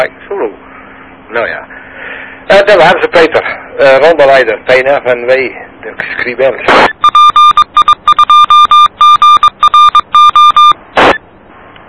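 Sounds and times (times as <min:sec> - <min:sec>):
speech: 0:00.0 - 0:00.2, 0:01.3 - 0:01.8, 0:02.5 - 0:06.9
radio static on an amateur radio net: 0:05.9 - 0:07.2, 0:10.4 - 0:11.2
very loud radio beeps on an amateur radio net: 0:06.7 - 0:11.2.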